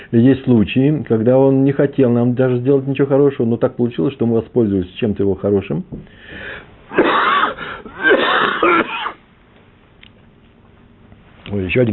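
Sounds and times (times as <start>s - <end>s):
speech: 0.1s - 7.2s, 11.5s - 11.9s
harsh wheezy coughing bursts: 6.9s - 9.2s.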